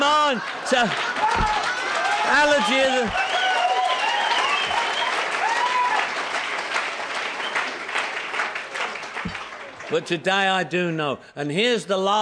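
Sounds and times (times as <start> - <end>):
cheers: 0.0 - 9.9
crowd applauding: 0.0 - 10.1
speech: 0.3 - 1.6, 2.2 - 3.3, 9.9 - 12.2
whistles: 3.1 - 5.4, 7.4 - 7.7.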